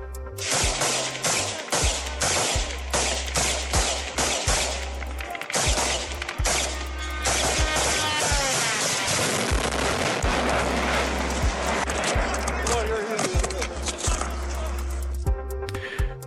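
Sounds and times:
chaotic noise: 0.0 - 16.2
police rifle fire on a parking lot in Kyiv: 0.4 - 12.8
kamikaze drone crashing and exploding on the ground: 0.4 - 14.4
kamikaze drone whining overhead: 1.1 - 15.4.

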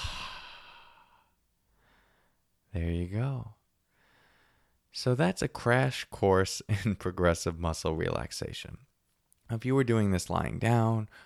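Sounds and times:
long deep exhale during a progressive muscle relaxation exercise: 0.0 - 1.3
speech: 2.8 - 3.6, 5.0 - 8.9, 9.5 - 11.2.

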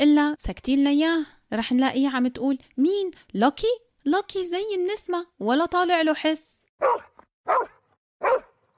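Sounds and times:
speech: 0.0 - 8.5
dog barking: 6.8 - 8.7.

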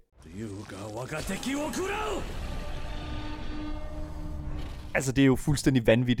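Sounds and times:
speech: 0.4 - 2.6, 5.0 - 6.1
video game dragon roaring: 1.1 - 5.0
sustained heavy rushing rumble: 1.5 - 5.2.

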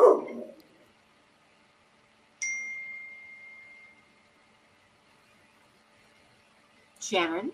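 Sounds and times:
dog barking: 0.0 - 0.6
clear ringing chime: 2.4 - 4.2
speech: 7.0 - 7.5.

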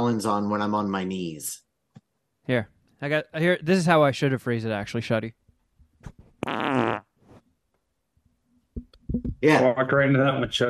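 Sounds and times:
speech: 0.1 - 1.6, 2.5 - 5.4, 9.2 - 10.6
loud drawn-out fart: 6.4 - 7.2.

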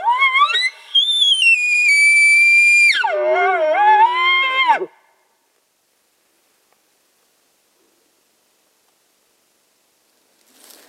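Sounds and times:
elk bugle blown on a bullhorn in a canyon: 0.0 - 5.0.

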